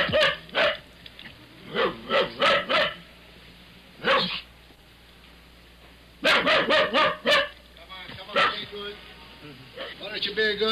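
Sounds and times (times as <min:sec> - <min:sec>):
dog locked in a car barking: 0:00.0 - 0:00.8, 0:01.7 - 0:03.0, 0:04.0 - 0:04.5, 0:06.2 - 0:07.6, 0:08.3 - 0:08.7, 0:09.8 - 0:10.0
low hum: 0:00.0 - 0:10.6.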